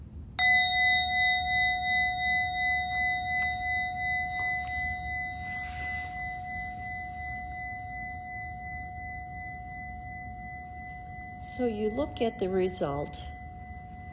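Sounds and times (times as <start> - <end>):
single meditation bell struck to end a meditation: 0.4 - 14.1
speech: 11.4 - 13.3.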